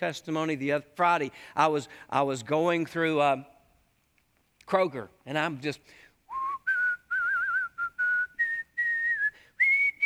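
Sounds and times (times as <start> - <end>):
speech: 0.0 - 3.5, 4.7 - 6.0
person whistling Christmas songs in a store: 6.3 - 10.0.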